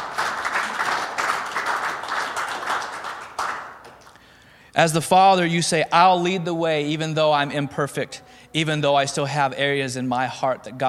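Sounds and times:
crowd clapping and applauding: 0.0 - 4.3
speech: 4.8 - 10.8.

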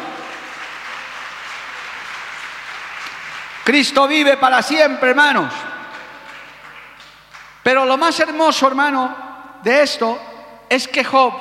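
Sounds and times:
audience applauding: 0.0 - 4.2, 5.9 - 7.6
speech: 3.7 - 5.7, 7.6 - 11.3.

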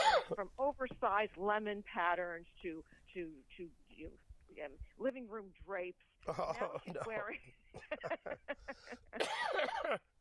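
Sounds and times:
raspy coughing fit triggered by laughing: 0.0 - 0.4, 8.8 - 10.1
speech: 0.3 - 10.1
short breathy laughs: 6.3 - 10.0.

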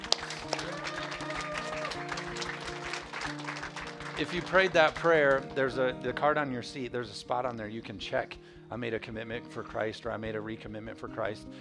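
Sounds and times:
audience clapping hands: 0.0 - 5.8
sustained music: 0.0 - 9.9
speech: 4.2 - 11.5.

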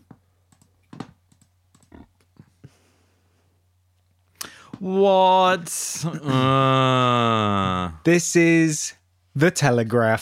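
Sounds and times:
faint steady hum: 0.0 - 10.2
computer mouse clicking: 0.5 - 2.0
speech: 4.8 - 10.2.

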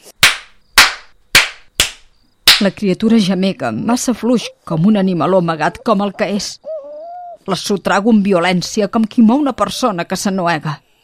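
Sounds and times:
sharp slaps on a baby's skin: 0.2 - 2.7
speech: 2.6 - 6.7, 7.4 - 10.8.

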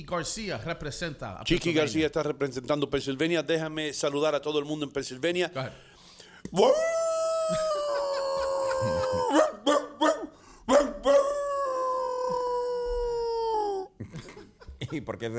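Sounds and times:
speech: 0.0 - 5.9, 6.5 - 7.7, 15.0 - 15.3
dog howling: 6.6 - 13.9
laughter: 7.2 - 9.4, 12.3 - 15.3
dog barking: 9.3 - 11.3.

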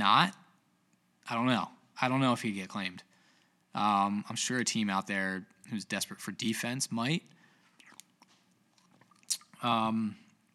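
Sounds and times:
speech: 0.0 - 0.4, 1.3 - 3.1, 3.7 - 7.4, 9.6 - 10.2
person sipping water: 7.7 - 9.6
person swallowing: 7.8 - 9.6.

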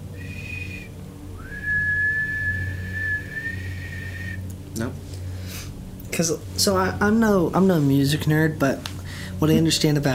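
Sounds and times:
person whistling two clear tones: 0.1 - 4.5
speech: 4.8 - 5.0, 6.2 - 10.1.

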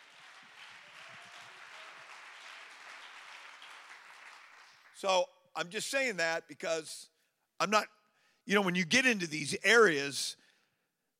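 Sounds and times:
audience clapping hands: 0.0 - 5.2
speech: 5.0 - 10.4.

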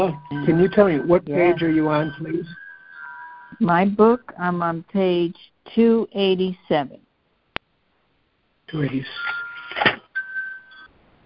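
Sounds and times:
speech: 0.0 - 2.6, 3.5 - 7.0, 8.7 - 9.9
wind chimes ringing in the wind: 0.0 - 3.6, 8.7 - 10.9.

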